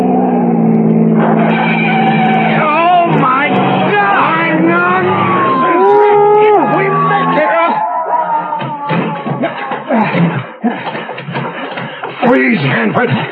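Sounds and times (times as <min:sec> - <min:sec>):
car roaring past at high speed: 0:00.0 - 0:07.6
car tires screeching: 0:00.0 - 0:07.8
laughter: 0:03.5 - 0:13.3
speech: 0:12.4 - 0:13.3.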